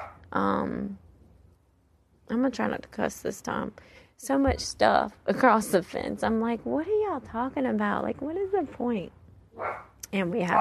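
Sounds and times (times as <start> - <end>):
dog barking: 0.0 - 0.2, 9.6 - 9.9
speech: 0.3 - 1.0, 2.3 - 10.5.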